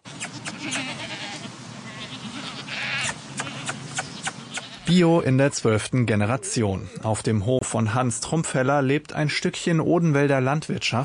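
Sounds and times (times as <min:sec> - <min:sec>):
goats bleating at a goat cheese farm in Bad König in the Odenwald, Germany: 0:00.1 - 0:05.1
speech: 0:04.9 - 0:11.0.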